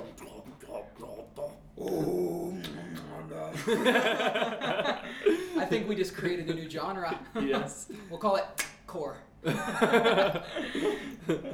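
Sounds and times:
person growling low and raspy: 0:00.0 - 0:03.6
laughter: 0:03.3 - 0:06.5, 0:07.1 - 0:08.0, 0:09.4 - 0:11.5
speech: 0:03.6 - 0:04.8, 0:05.7 - 0:11.5.

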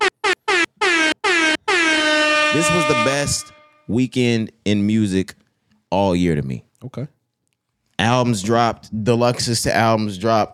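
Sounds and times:
air horn sound effect blasts: 0:00.0 - 0:03.9
speech: 0:02.5 - 0:07.2, 0:08.0 - 0:10.5.

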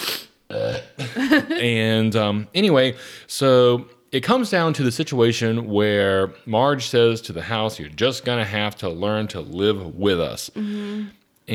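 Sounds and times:
loud burp: 0:00.5 - 0:01.1
speech: 0:01.2 - 0:11.5.

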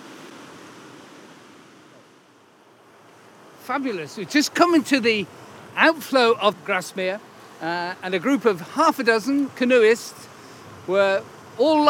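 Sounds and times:
river water rushing: 0:00.0 - 0:11.8
speech: 0:03.7 - 0:10.3, 0:10.9 - 0:11.8.

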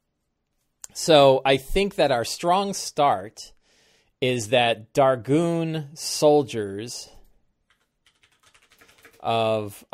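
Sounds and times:
speech: 0:00.9 - 0:03.6, 0:04.2 - 0:07.2, 0:09.2 - 0:09.9
typing on a computer keyboard: 0:07.6 - 0:09.3.

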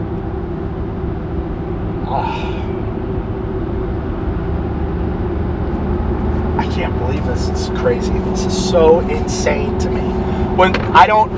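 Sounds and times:
car interior road noise driving a back route in rural Maine: 0:00.0 - 0:11.3
person exclaiming: 0:02.0 - 0:02.8
speech: 0:02.1 - 0:02.5, 0:07.8 - 0:11.3.

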